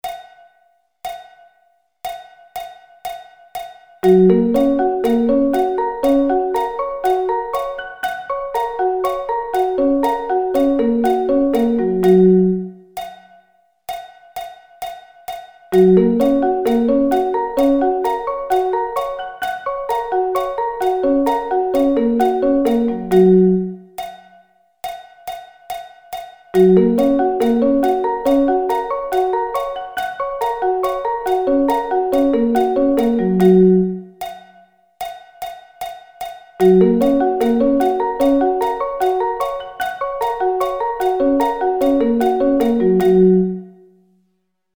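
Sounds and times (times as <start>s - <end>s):
arpeggio inversions: 4.0s - 12.9s, 15.8s - 23.9s, 26.6s - 34.2s, 36.6s - 43.8s.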